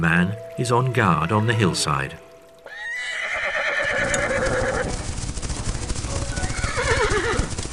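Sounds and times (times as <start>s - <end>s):
speech: 0.0s - 2.3s
horse neighing: 2.7s - 5.0s, 6.3s - 7.5s
hooves of a group of horses clattering: 3.2s - 7.7s.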